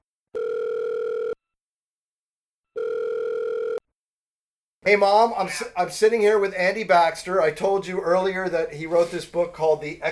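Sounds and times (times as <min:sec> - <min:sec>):
phone line ringing back as a call is placed: 0:00.4 - 0:01.4, 0:02.8 - 0:03.8
speech: 0:04.8 - 0:10.1.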